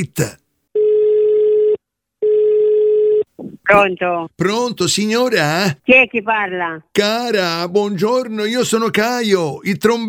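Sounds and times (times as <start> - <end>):
speech: 0.0 - 0.4, 3.7 - 10.0
telephone ringing tone before call connects: 0.8 - 3.3.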